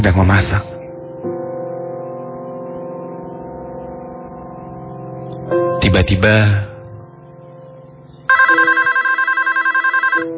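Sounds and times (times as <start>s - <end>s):
speech: 0.0s - 0.7s, 5.9s - 6.7s
telephone ringing with an incoming call in a restaurant kitchen: 8.3s - 10.3s.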